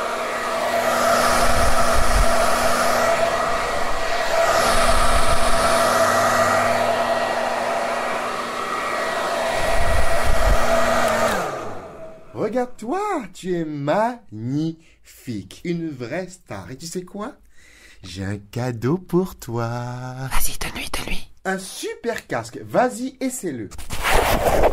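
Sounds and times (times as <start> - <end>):
hair dryer blowing: 0.0 - 12.6
speech: 12.8 - 24.7.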